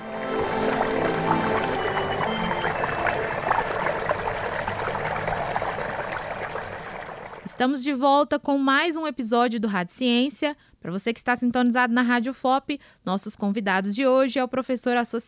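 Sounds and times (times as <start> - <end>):
water trickling from a faucet: 1.0 - 7.6
speech: 7.6 - 15.2.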